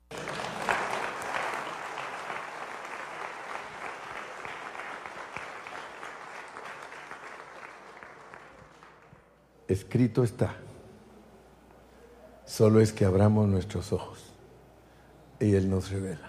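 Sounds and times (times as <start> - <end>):
audience clapping: 0.0 - 9.4
speech: 9.7 - 10.7, 12.6 - 14.3, 15.4 - 16.2.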